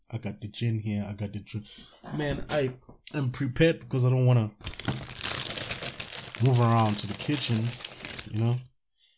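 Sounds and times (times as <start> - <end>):
speech: 0.1 - 5.0, 6.4 - 8.7
ice cubes clinking inside a plastic bag: 4.6 - 8.5
plastic bag of ice cubes crinkling and rustling: 4.6 - 8.6.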